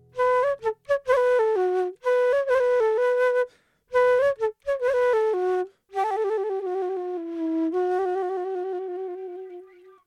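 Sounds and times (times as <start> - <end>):
flute playing a bouncy melody: 0.0 - 10.0.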